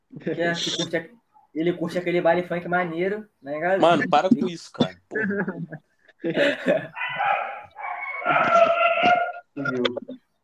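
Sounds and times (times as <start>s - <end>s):
speech: 0.2s - 7.0s, 8.3s - 10.2s
laughter: 4.6s - 7.4s
several dogs barking and yowling: 6.9s - 9.4s.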